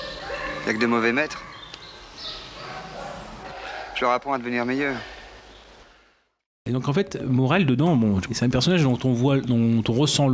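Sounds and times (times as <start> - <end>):
dog giving short yappy barks: 0.0 - 4.2
speech: 0.7 - 1.5, 4.0 - 5.1, 6.6 - 10.3.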